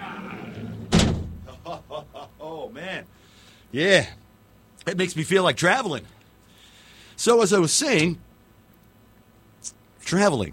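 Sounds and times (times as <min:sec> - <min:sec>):
laughter: 0:00.0 - 0:00.8, 0:01.4 - 0:02.8
heavy door slamming shut: 0:00.5 - 0:01.6
speech: 0:02.7 - 0:04.2, 0:04.8 - 0:06.2, 0:07.2 - 0:08.3, 0:09.6 - 0:10.5.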